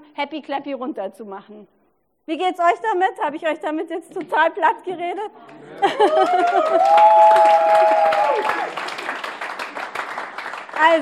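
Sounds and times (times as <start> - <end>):
speech: 0.2 - 8.8, 10.8 - 10.9
laughter: 5.5 - 7.2
crowd applauding: 5.5 - 10.9.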